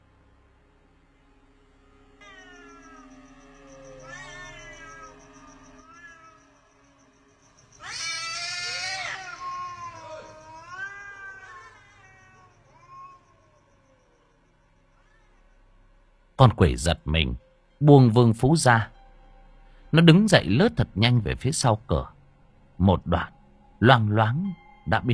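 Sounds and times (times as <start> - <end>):
two cats yowling loudly on a roof: 2.2 - 6.9, 7.8 - 15.4
speech: 16.4 - 19.0, 19.9 - 22.2, 22.8 - 25.1.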